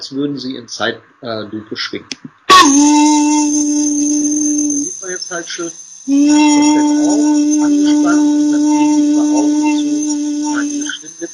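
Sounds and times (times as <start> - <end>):
sustained voiced tone around 300 Hz: 0.0 - 11.3
speech: 0.1 - 3.4, 5.0 - 10.0.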